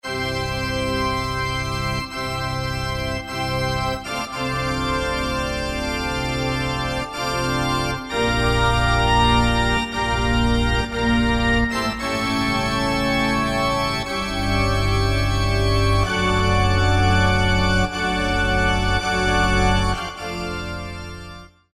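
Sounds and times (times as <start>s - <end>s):
synthesized pipe organ factory patch: 0.0s - 21.7s.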